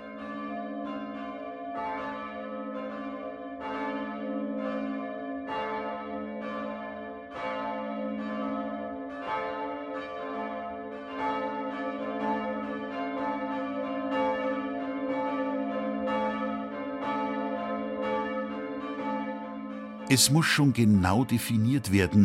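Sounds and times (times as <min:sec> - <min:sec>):
church bells ringing the noon peal: 0:00.0 - 0:22.2
speech: 0:20.1 - 0:22.2.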